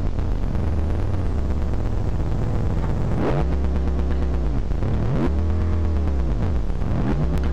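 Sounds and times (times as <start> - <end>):
synthesizer with adjustable dials mimicking a Corvette sports car engine revving: 0.0 - 7.5.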